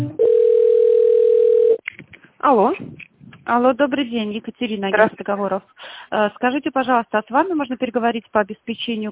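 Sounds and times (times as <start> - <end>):
buzzy harmonic telephone tone bursts while a call is transferred: 0.2 - 1.8
speech: 3.6 - 9.1.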